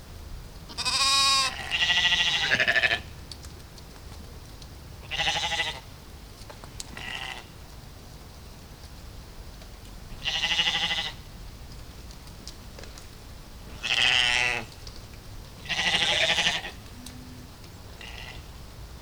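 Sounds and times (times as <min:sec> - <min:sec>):
Ovis orientalis bleating: 0:00.7 - 0:03.1, 0:05.0 - 0:05.8, 0:10.2 - 0:11.2, 0:13.7 - 0:14.7, 0:15.6 - 0:18.6.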